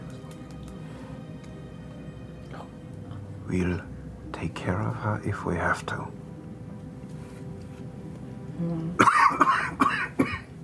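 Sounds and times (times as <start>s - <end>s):
faint low hum: 0.0s - 10.6s
speech: 3.5s - 6.2s, 8.6s - 9.8s
person coughing harsh raspy bursts: 9.0s - 10.5s.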